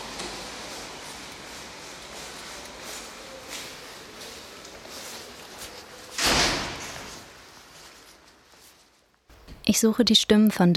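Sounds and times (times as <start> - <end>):
steady hiss of quiet room noise: 0.0 - 9.7
faint handling sounds: 1.0 - 6.2, 6.8 - 9.7
wooden door swinging and closing with a thud: 6.2 - 7.1
speech: 9.7 - 10.7.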